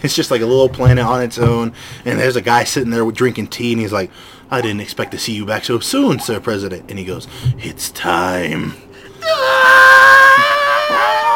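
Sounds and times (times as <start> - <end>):
speech: 0.0 - 9.8
person imitating a long scream: 9.2 - 11.3.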